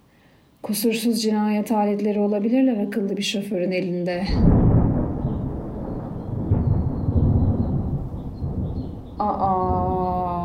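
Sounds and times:
speech: 0.6s - 4.6s
thunder rumbling as weather turns stormy: 4.2s - 10.4s.

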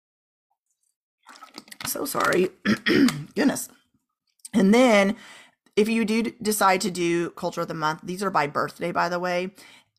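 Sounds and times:
person sipping water: 1.3s - 3.4s
speech: 1.9s - 3.8s, 4.5s - 9.8s.

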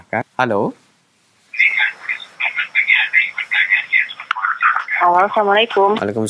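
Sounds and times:
faint steady whine: 0.0s - 6.2s
speech: 0.1s - 0.8s, 5.1s - 6.2s
television sound blaring behind a phone call: 1.5s - 6.2s
thin band-limited voices through a phone line: 1.6s - 6.1s.

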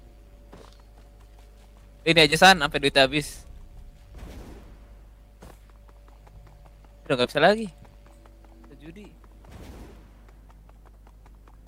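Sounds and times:
video game horse clip-clop hoofbeats: 0.0s - 2.7s, 5.2s - 11.6s
constant low hum: 0.0s - 11.6s
speech: 2.0s - 3.5s, 7.1s - 7.8s, 8.8s - 9.2s.

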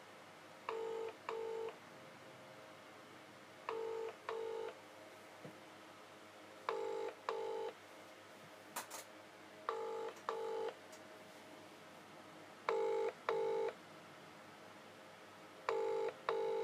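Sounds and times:
outgoing call double-pulse ringing tone on a UK mobile network: 0.7s - 1.8s, 3.7s - 4.8s, 6.7s - 7.8s, 9.7s - 10.8s, 12.7s - 13.8s, 15.7s - 16.6s.

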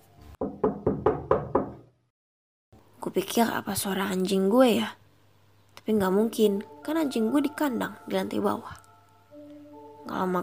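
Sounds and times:
knocking on a bedroom door: 0.4s - 1.9s
speech: 3.0s - 5.0s, 5.8s - 8.8s, 10.1s - 10.4s.

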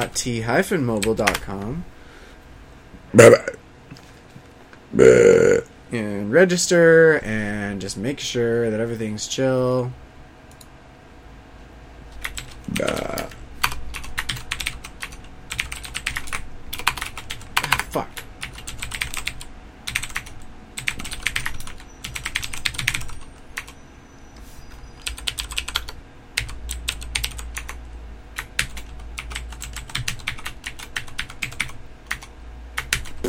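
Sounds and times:
speech: 0.1s - 2.0s, 3.1s - 3.6s, 4.9s - 10.0s
typing a phone number on a computer keyboard: 12.2s - 23.8s, 25.0s - 27.8s, 28.4s - 33.1s.

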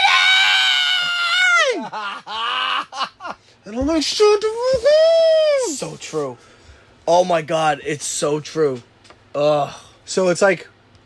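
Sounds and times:
voice imitating a child screaming: 0.0s - 1.9s
speech: 1.9s - 10.7s.

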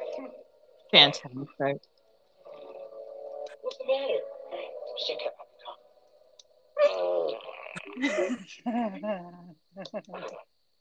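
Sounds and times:
speech: 0.9s - 1.9s, 3.6s - 4.3s, 5.0s - 5.4s, 6.8s - 10.5s
fart noises from a video: 6.8s - 8.0s
people laughing: 7.9s - 9.2s.

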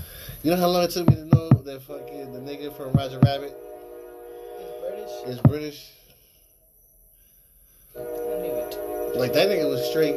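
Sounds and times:
speech: 0.4s - 3.7s, 5.0s - 6.0s, 9.2s - 10.1s
train horn blaring: 1.7s - 6.4s, 7.9s - 10.1s.

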